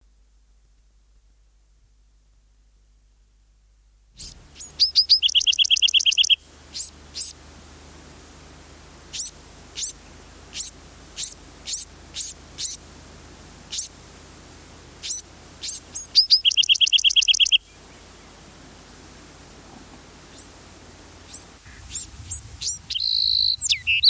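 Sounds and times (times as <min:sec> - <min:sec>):
Bewick's wren songbird: 0:04.2 - 0:07.4, 0:09.1 - 0:12.8, 0:13.7 - 0:14.0, 0:15.0 - 0:18.5, 0:19.9 - 0:24.0.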